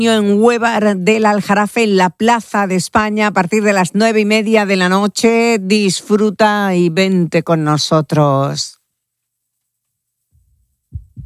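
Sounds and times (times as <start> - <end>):
speech: 0.0 - 8.8
heartbeat thumping: 10.4 - 11.2.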